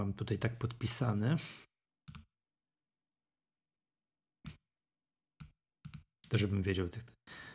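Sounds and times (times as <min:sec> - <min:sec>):
speech: 0:00.0 - 0:01.7, 0:06.3 - 0:07.5
computer mouse clicks while adding a file on a file verification website: 0:02.1 - 0:02.3, 0:05.4 - 0:06.1.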